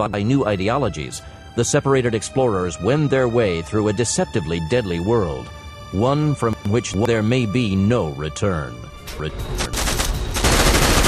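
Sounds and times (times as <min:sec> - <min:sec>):
speech: 0:00.0 - 0:10.0
semi-automatic revolver gunfire: 0:09.8 - 0:11.0.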